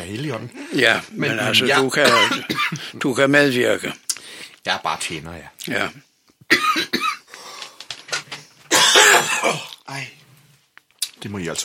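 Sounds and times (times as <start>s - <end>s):
speech: 0.0s - 4.0s, 4.6s - 6.1s, 9.4s - 10.2s, 11.2s - 11.6s
person coughing: 2.0s - 2.8s, 6.5s - 7.3s, 8.7s - 9.8s.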